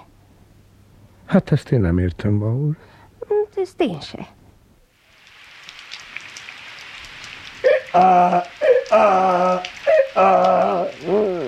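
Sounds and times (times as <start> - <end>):
speech: 1.3 - 3.0, 3.6 - 4.4, 7.9 - 11.3
heavy rain pouring: 5.0 - 11.4.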